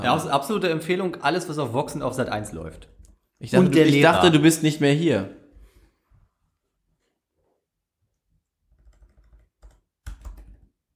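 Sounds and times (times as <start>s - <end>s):
speech: 0.0s - 5.4s
typing on a computer keyboard: 8.7s - 10.9s.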